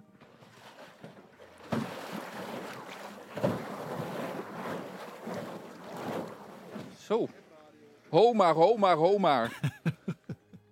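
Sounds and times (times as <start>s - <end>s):
pedal boat paddle wheel churning water on the Leemputten near Groenlo: 0.0s - 7.3s
speech: 7.1s - 7.4s, 8.1s - 9.8s
laughter: 9.4s - 10.6s.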